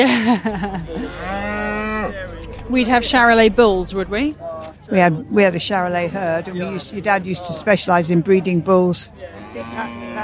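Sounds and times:
laughter: 0.0 - 3.0
speech: 0.0 - 10.2
cow mooing at a farm cow pen: 0.8 - 4.3, 9.4 - 10.2.

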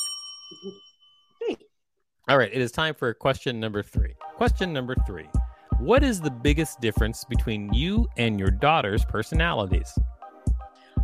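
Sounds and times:
single bright bell ding: 0.0 - 1.4
speech: 0.5 - 0.9, 2.3 - 10.1.

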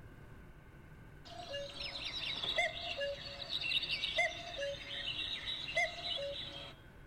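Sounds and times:
chorus of other birds singing and chirping outdoors: 1.3 - 6.8
common cuckoo calling two-note cu-coo: 1.3 - 6.8.

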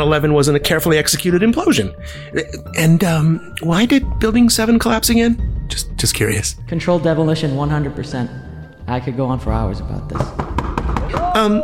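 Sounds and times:
speech: 0.0 - 10.5, 11.1 - 11.6
men knocking on a door: 10.1 - 11.4.

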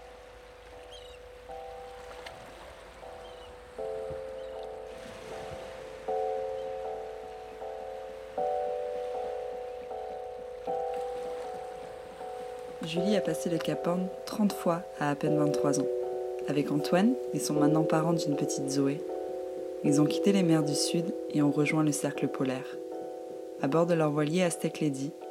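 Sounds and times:
sailboat engine running with a low droning hum: 0.0 - 14.4
faint water: 0.0 - 25.2
speech: 12.9 - 19.1, 19.8 - 22.8, 23.6 - 25.2.

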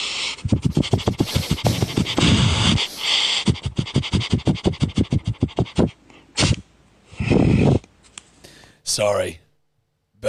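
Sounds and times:
person imitating a dog sniffing: 0.0 - 7.9
speech: 9.0 - 9.4.

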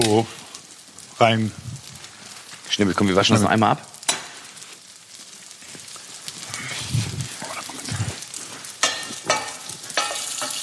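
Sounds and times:
broccoli and bell pepper pieces frying in a pan with tofu: 0.0 - 10.6
speech: 0.1 - 0.4, 1.2 - 1.8, 2.7 - 3.9
clatters and scrapes from stirring vegetables in a pan: 5.7 - 10.6.

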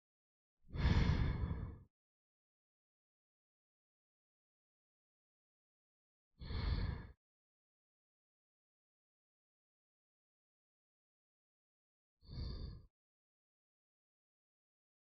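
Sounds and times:
slow deep inhales and exhales: 0.7 - 1.9, 6.4 - 7.2, 12.2 - 12.9.

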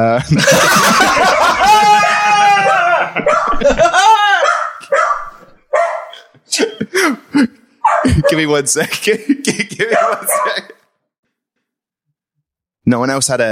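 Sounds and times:
speech: 0.0 - 1.4, 8.3 - 10.6, 12.9 - 13.5
people chuckling: 0.0 - 4.5, 6.2 - 10.8
dog barking at a delivery: 2.6 - 3.8, 4.4 - 6.3, 7.8 - 8.5, 9.9 - 10.8.

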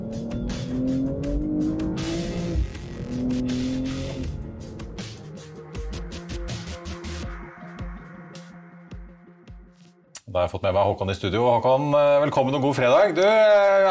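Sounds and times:
sports car tire noise: 0.0 - 5.0
BMW four-wheel drive sports car accelerating hard with engine roaring: 0.0 - 5.2
speech: 10.3 - 13.8.

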